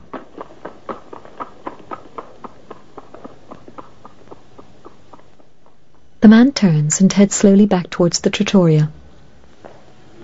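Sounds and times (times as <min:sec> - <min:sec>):
zebra hooves clip-clopping as it trots down a street: 0:00.0 - 0:06.1
speech: 0:06.2 - 0:09.0.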